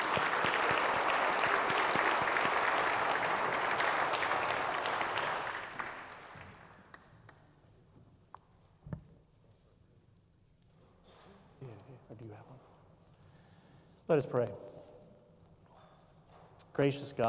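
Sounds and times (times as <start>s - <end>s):
audience applauding to welcome the preacher: 0.0s - 7.4s
speech: 14.1s - 14.6s, 16.8s - 17.2s.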